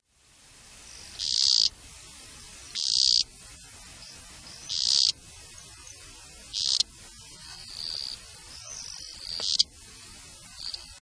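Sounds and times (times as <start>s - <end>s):
Blommersia kely calling: 1.0s - 1.8s, 2.6s - 3.4s, 4.5s - 9.8s, 10.5s - 11.0s.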